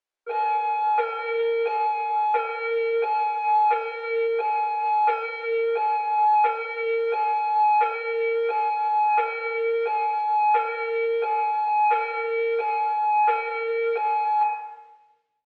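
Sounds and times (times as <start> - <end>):
hi-low emergency services siren in Yuba County: 0.3 - 15.2.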